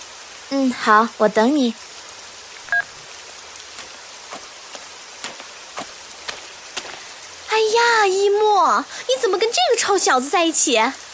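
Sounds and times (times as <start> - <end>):
steady rain hissing: 0.0 - 11.1
speech: 0.5 - 1.9, 7.8 - 11.1
sharper raindrops tapping: 2.5 - 10.9.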